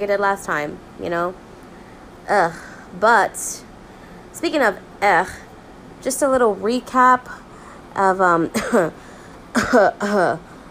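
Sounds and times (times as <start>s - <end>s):
speech: 0.0s - 1.5s, 2.3s - 3.7s, 4.4s - 5.4s, 6.0s - 7.4s, 8.0s - 10.5s
person coughing: 8.5s - 10.4s.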